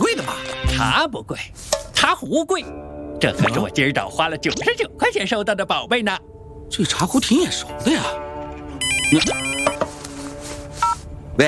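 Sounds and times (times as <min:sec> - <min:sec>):
speech: 0:00.8 - 0:08.3, 0:09.1 - 0:09.9
phone ringtone electronic melody for an incoming call: 0:08.8 - 0:09.9.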